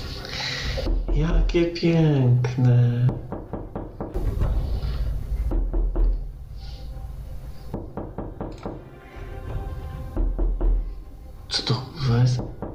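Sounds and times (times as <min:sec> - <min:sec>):
speech: 0:00.8 - 0:03.4
quick knocking: 0:03.1 - 0:06.3, 0:07.7 - 0:08.8, 0:10.1 - 0:10.9, 0:12.3 - 0:12.7.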